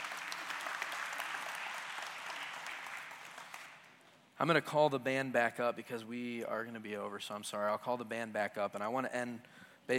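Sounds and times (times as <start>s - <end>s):
audience applauding: 0.0s - 4.0s
speech: 4.4s - 9.9s.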